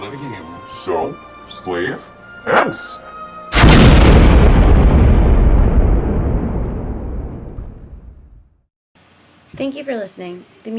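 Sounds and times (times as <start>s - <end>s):
speech: 0.0s - 3.1s, 9.5s - 10.7s
grenade explosion: 3.5s - 8.7s.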